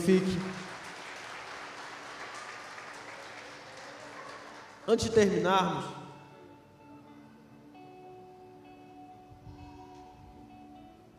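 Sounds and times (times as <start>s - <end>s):
speech: 0.0s - 0.6s, 4.9s - 6.0s
church audience applauding: 0.0s - 5.4s.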